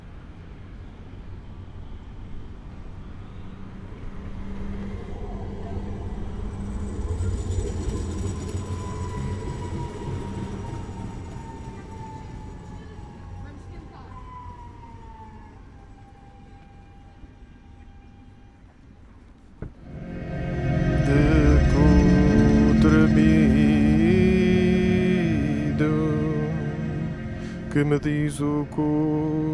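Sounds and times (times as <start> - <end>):
tram rumbling along rails: 3.7 - 15.4, 19.8 - 29.5
speech: 27.8 - 29.5.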